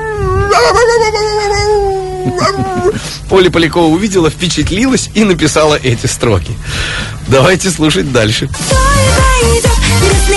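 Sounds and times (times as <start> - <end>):
dog whining: 0.0 - 3.0
speech: 2.3 - 10.3.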